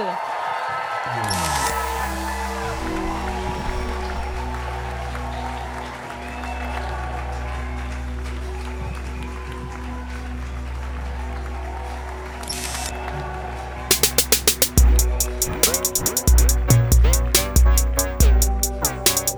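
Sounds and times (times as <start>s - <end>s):
crowd clapping: 0.0s - 16.4s
speech: 1.0s - 1.4s
loud sustained low-pitched music: 1.2s - 9.4s, 13.9s - 19.3s.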